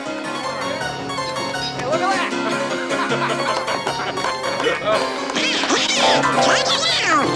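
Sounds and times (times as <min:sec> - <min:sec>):
busy music: 0:00.0 - 0:07.3
laughter: 0:02.2 - 0:07.1
cartoon duck voice quacking gibberish: 0:05.4 - 0:07.3.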